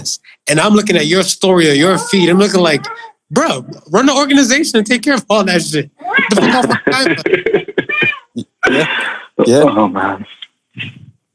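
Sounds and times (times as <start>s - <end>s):
speech: 0.0s - 11.0s
cat meowing: 1.8s - 3.2s, 6.0s - 6.6s, 7.8s - 8.4s
laughter: 6.2s - 9.9s.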